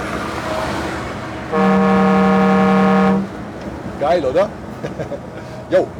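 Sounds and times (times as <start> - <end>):
low traffic rumble: 0.0 - 5.9
car horn blast through a slightly open car window: 1.5 - 3.4
speech: 4.1 - 5.9.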